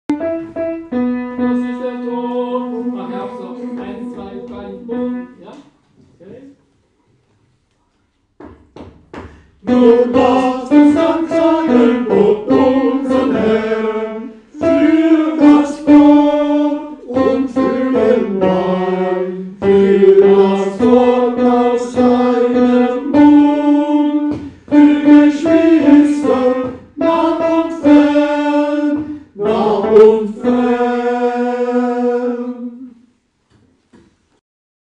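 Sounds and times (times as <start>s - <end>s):
tenor singing a hymn of thanks: 1.1s - 5.4s, 9.6s - 33.0s.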